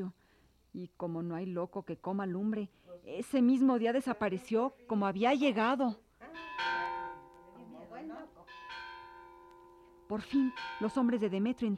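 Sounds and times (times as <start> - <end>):
speech: 0.0 - 6.0, 10.1 - 11.7
church bells in the town of Juchipila ringing joyfully: 6.3 - 11.7.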